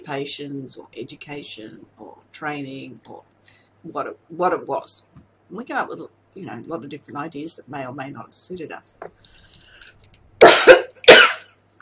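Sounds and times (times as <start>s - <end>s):
speech: 0.0s - 9.6s
dry coughs from a tickle in the throat: 10.4s - 11.5s.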